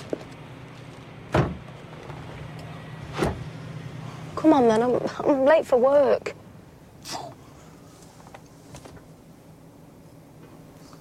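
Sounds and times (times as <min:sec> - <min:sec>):
low idling car hum: 0:00.0 - 0:10.9
car doors shutting with a dull solid thunk: 0:01.3 - 0:03.5
speech: 0:04.4 - 0:06.4.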